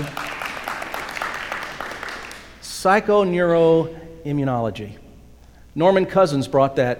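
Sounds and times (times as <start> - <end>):
audience clapping: 0.0 - 2.6
speech: 2.8 - 5.0, 5.8 - 6.9.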